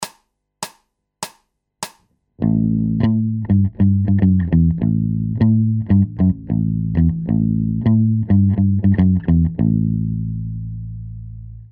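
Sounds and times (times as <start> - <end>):
bass loops: 2.4 - 11.7.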